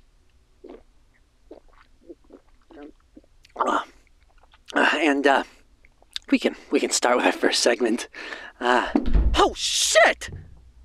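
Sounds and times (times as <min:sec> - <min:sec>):
person sipping and swallowing a drink: 0:00.6 - 0:00.8, 0:01.5 - 0:03.7
speech: 0:05.0 - 0:05.6, 0:06.3 - 0:10.4
breathy gasp: 0:08.2 - 0:08.6.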